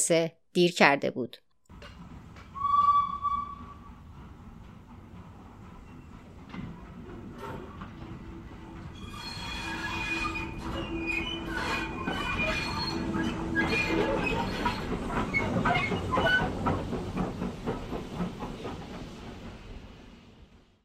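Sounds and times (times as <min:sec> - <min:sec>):
speech: 0:00.0 - 0:01.9
train rumbling into a station: 0:01.7 - 0:20.8
high metallic train wheel and brake squeals: 0:02.4 - 0:04.1, 0:08.9 - 0:16.6
short train whistle: 0:02.5 - 0:04.1, 0:08.9 - 0:15.0.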